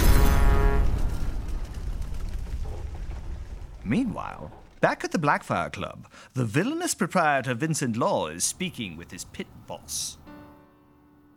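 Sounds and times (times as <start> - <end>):
steam hearse boiler exploding at maximum pressure: 0.0 - 5.5
speech: 3.9 - 10.2.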